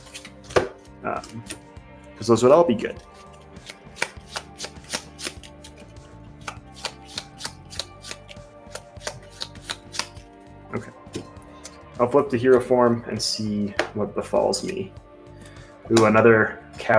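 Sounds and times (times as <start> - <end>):
playing cards shuffled back into a deck during a tabletop card game: 0.0 - 12.7
speech: 1.0 - 1.6, 2.2 - 3.1, 12.0 - 15.0, 15.9 - 16.9.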